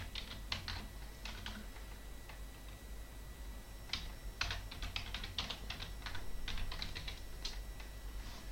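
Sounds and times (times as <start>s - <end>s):
typing on a computer keyboard: 0.0s - 2.8s, 3.9s - 7.9s
low hum: 0.0s - 8.4s.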